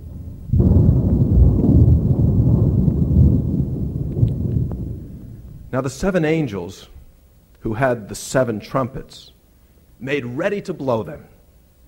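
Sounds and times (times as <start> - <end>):
deep peal of thunder rolling: 0.0 - 6.5
speech: 5.8 - 7.0, 7.6 - 9.4, 10.0 - 11.3.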